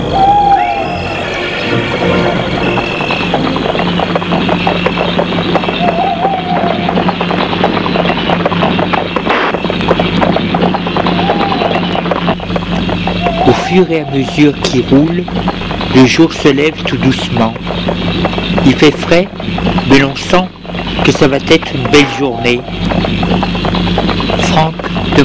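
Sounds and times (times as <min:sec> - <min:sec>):
owl hooting: 0:00.0 - 0:08.1, 0:10.9 - 0:15.6, 0:17.6 - 0:24.9
single horse's hooves clip-clopping pulling a cabriolet carriage at daybreak in cool weather: 0:00.0 - 0:25.2
speech: 0:13.8 - 0:23.6, 0:24.6 - 0:25.2.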